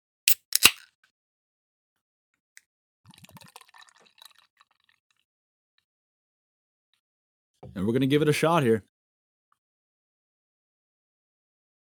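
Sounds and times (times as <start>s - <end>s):
can of cherry-flavoured beer cracking open: 0.3s - 0.9s
cherry-flavoured beer pouring into a glass: 3.1s - 5.0s
speech: 7.7s - 8.9s.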